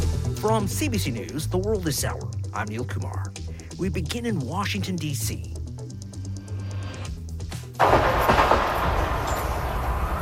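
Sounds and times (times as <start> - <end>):
speech: 0.4 - 5.6
gunshots near the White House in Washington D.C.: 7.8 - 9.9.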